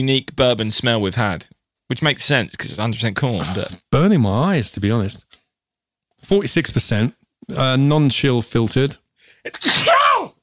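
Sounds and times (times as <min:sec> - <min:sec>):
speech: 0:00.0 - 0:05.4, 0:06.2 - 0:10.0
loud sneeze: 0:09.5 - 0:10.4.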